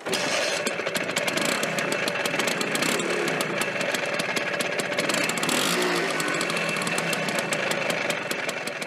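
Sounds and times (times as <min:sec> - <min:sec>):
small scooter engine buzzing with rapid rattling pulse: 0:00.0 - 0:08.8.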